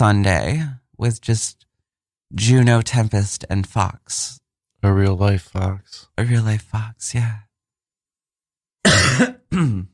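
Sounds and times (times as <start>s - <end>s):
speech: 0.0s - 1.6s, 2.3s - 7.4s, 8.8s - 9.9s
harsh throaty coughs: 8.8s - 9.9s.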